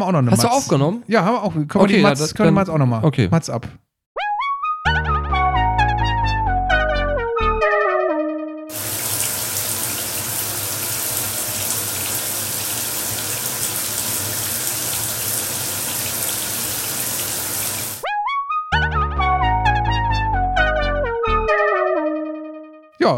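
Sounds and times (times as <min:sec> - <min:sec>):
speech: 0:00.0 - 0:03.8
tonal music: 0:04.2 - 0:08.8, 0:18.0 - 0:22.9
cold shower running: 0:08.7 - 0:18.0.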